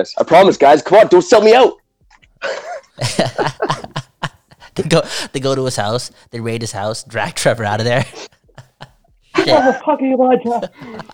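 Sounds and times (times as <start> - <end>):
speech: 0.0 - 1.8, 2.4 - 4.0, 4.8 - 8.3, 9.4 - 11.1
laughter: 2.4 - 11.1
person coughing: 9.4 - 9.8.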